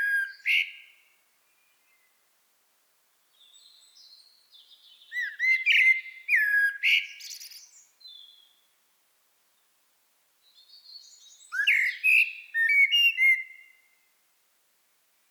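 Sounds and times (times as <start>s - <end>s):
Common blackbird Turdus merula song: 0.0s - 2.1s, 3.4s - 8.7s, 10.6s - 14.0s.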